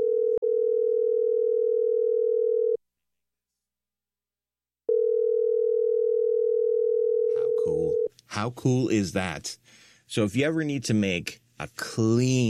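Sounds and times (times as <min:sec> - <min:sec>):
telephone dial tone of two sine-wave pitches: 0:00.0 - 0:02.8, 0:04.9 - 0:07.5
speech: 0:08.4 - 0:12.4.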